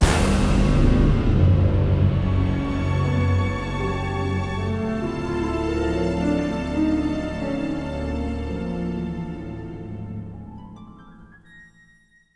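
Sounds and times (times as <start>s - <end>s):
music flourish: 0.0s - 10.8s.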